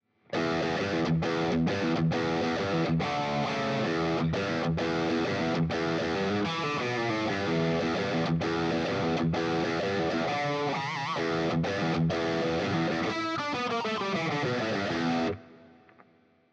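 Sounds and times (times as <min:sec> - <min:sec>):
electric guitars playing: 0:00.3 - 0:15.8.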